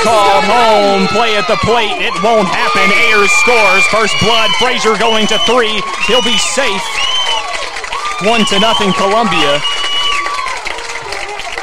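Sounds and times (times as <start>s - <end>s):
crowd cheering at a baseball game after a run scores: 0.0s - 11.6s
speech: 0.5s - 7.2s, 8.2s - 9.9s
whistle-like tone: 4.6s - 7.4s, 8.3s - 10.3s.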